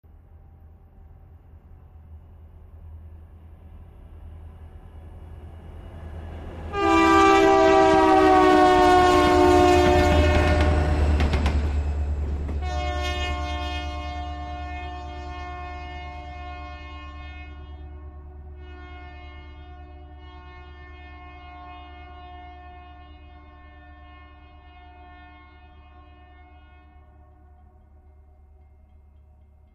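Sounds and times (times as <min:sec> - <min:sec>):
train horn passing by with Doppler shift: 0:06.3 - 0:28.1.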